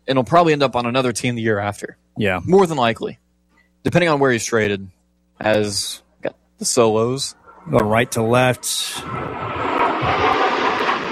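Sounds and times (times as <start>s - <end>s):
faint low rumbles: 0.0s - 11.0s
speech: 0.1s - 3.2s, 3.8s - 10.4s
jet aircraft passing overhead: 7.2s - 11.0s.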